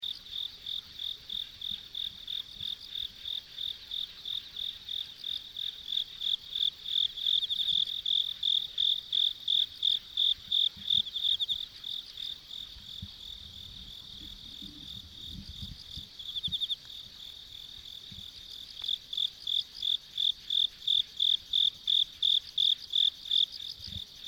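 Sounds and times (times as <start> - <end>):
forest insects chirping: 0.0 - 24.2.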